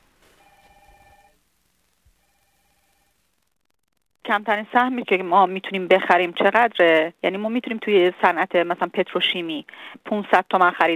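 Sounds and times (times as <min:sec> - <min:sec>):
telephone ringing with a bright electronic trill for an incoming call: 0:00.4 - 0:01.4, 0:02.2 - 0:03.2
speech: 0:04.3 - 0:10.9.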